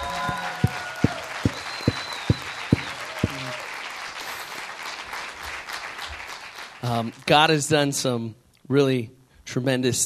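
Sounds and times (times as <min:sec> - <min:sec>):
audience applauding warmly: 0:00.0 - 0:07.3
speech: 0:06.9 - 0:10.0.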